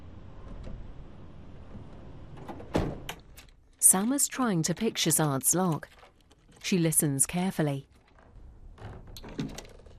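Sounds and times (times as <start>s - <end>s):
van door shutting as someone climbs into the van: 1.7s - 3.3s
speech: 3.9s - 7.9s.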